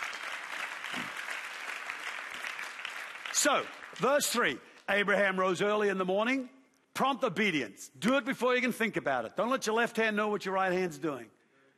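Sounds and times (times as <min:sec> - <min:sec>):
audience applause: 0:00.0 - 0:04.6
speech: 0:03.4 - 0:11.4.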